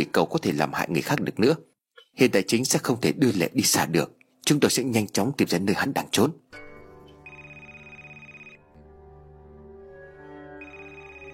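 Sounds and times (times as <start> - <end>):
speech: 0.0 - 6.6
telephone ringing with a high electronic ring tone: 7.2 - 8.8, 10.6 - 11.3.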